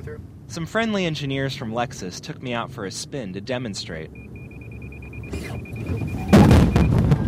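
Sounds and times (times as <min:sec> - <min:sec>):
speech: 0:00.0 - 0:04.3
car collision alarm high electronic warning beeps: 0:04.0 - 0:07.2.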